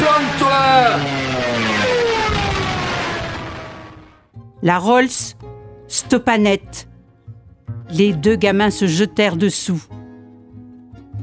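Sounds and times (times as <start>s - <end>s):
aircraft engine drone: 0.0s - 4.3s
speech: 4.6s - 6.9s, 7.9s - 10.0s.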